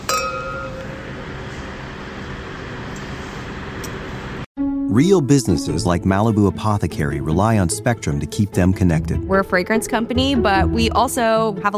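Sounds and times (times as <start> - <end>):
wine glasses of Tansy Vermentino clinking in a toast at A16 in Napa: 0.0 - 1.1
speech: 4.9 - 11.7.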